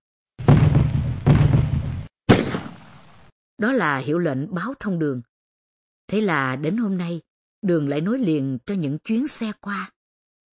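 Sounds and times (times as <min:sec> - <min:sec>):
rifle shots: 0:00.4 - 0:03.3
speech: 0:03.6 - 0:05.3, 0:06.1 - 0:10.0.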